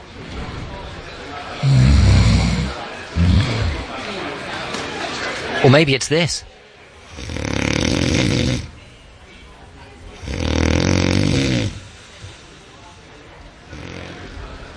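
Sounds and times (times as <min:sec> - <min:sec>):
person snoring loudly: 0:01.6 - 0:03.9, 0:07.1 - 0:08.7, 0:10.2 - 0:12.2, 0:13.7 - 0:14.2
speech: 0:05.6 - 0:06.5.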